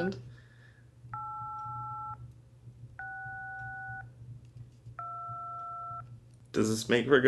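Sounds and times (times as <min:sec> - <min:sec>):
speech: 0:00.0 - 0:00.3, 0:06.6 - 0:07.2
low constant hum: 0:00.0 - 0:07.2
two-pitched telephone keypad dialing tones: 0:01.2 - 0:02.2, 0:03.0 - 0:04.1, 0:05.0 - 0:06.0.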